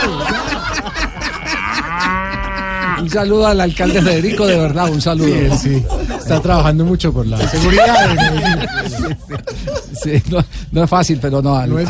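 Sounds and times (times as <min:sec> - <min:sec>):
laughter: 0:00.0 - 0:10.6
cow mooing: 0:01.1 - 0:03.2
speech: 0:03.0 - 0:11.8.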